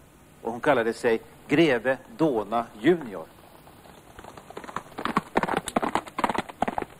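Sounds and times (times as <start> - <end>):
speech: 0.5 - 3.4
horse hooves clip-clopping as a rider sets off on horseback: 3.4 - 6.9.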